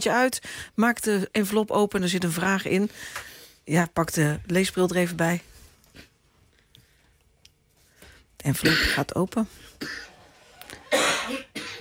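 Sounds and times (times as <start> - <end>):
speech: 0.0 - 6.1, 8.4 - 10.1
person coughing in a radio news studio: 8.6 - 9.2, 9.8 - 10.1, 10.8 - 11.7.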